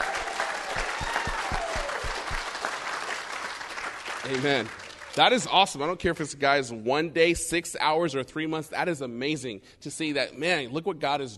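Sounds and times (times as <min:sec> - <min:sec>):
crowd clapping: 0:00.0 - 0:05.5
speech: 0:04.3 - 0:11.3.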